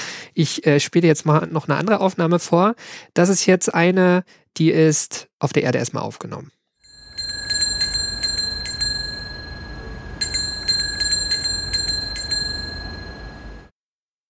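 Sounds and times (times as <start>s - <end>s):
speech: 0.4s - 6.6s
ordinary bicycle bell ringing: 6.8s - 13.7s
steady low rumble of traffic: 7.1s - 13.7s.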